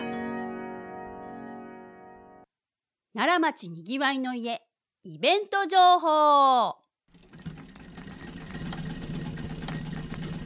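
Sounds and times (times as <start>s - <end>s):
speech: 3.2s - 6.8s
treadle sewing machine running: 7.1s - 10.4s.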